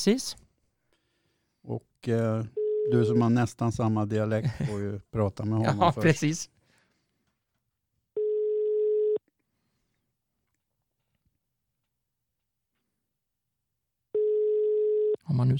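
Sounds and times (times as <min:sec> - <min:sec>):
speech: 0:00.0 - 0:00.4, 0:01.6 - 0:06.6, 0:15.3 - 0:15.5
telephone ringback tone while dialing: 0:02.6 - 0:03.3, 0:08.2 - 0:09.2, 0:14.2 - 0:15.2
laughter: 0:04.3 - 0:05.0.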